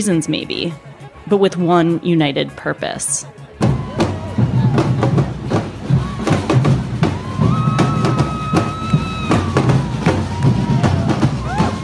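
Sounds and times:
speech: 0:00.0 - 0:03.5
street protest crowd of demonstrators roaring: 0:03.5 - 0:11.8.

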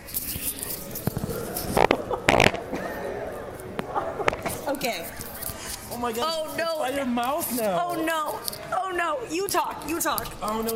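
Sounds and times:
laughter: 0:00.6 - 0:06.2
fart: 0:00.8 - 0:03.0
speech: 0:06.0 - 0:10.7.

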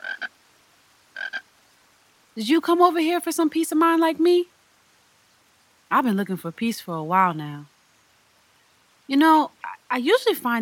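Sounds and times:
frog croaking out of the water: 0:00.0 - 0:00.4, 0:01.1 - 0:01.5
speech: 0:02.4 - 0:04.5, 0:05.9 - 0:07.7, 0:09.1 - 0:10.6.

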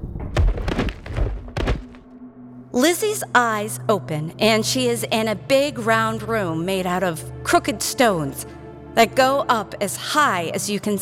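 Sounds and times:
dull heavy thuds of a person collapsing to the ground: 0:00.0 - 0:02.1
speech: 0:02.8 - 0:11.0.

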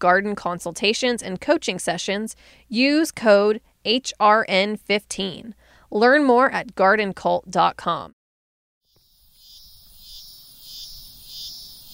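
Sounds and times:
speech: 0:00.0 - 0:08.2
chorus of cicadas buzzing in a high-pitched drone: 0:08.9 - 0:11.9.

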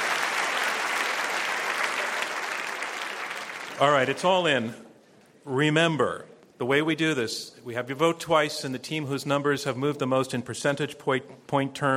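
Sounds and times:
audience applause for debate participants: 0:00.0 - 0:04.2
speech: 0:03.8 - 0:04.8, 0:05.5 - 0:11.9.

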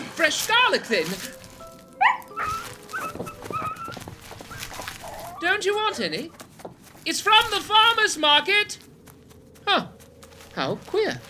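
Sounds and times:
speech: 0:00.2 - 0:01.4, 0:05.4 - 0:06.4, 0:07.0 - 0:08.8, 0:09.7 - 0:10.0, 0:10.6 - 0:11.2
sharp rising wolf yelp: 0:02.0 - 0:05.5
wolves whining and growling poised to attack: 0:02.0 - 0:05.5.

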